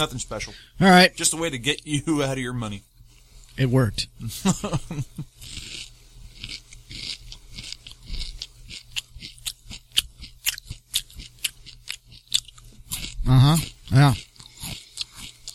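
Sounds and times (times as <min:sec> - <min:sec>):
speech: 0:00.0 - 0:02.9, 0:03.6 - 0:05.8, 0:13.3 - 0:14.3
crunchy chewing of dry frosted wheat cereal: 0:05.2 - 0:15.5.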